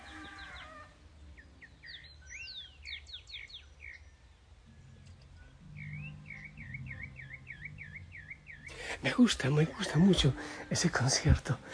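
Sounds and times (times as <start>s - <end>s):
low constant rumble: 0.0s - 11.7s
small birds singing varied songs: 0.0s - 11.7s
speech: 9.0s - 11.7s.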